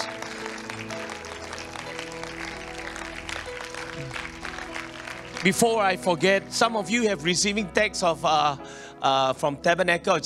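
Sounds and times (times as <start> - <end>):
large church audience clapping: 0.0 - 6.6
speech: 5.4 - 10.2.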